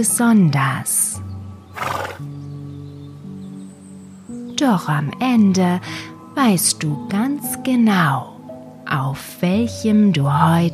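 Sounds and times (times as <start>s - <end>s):
speech: 0.0s - 2.5s, 4.6s - 8.3s, 8.9s - 10.7s
Icelandic horse neighing: 1.7s - 2.2s.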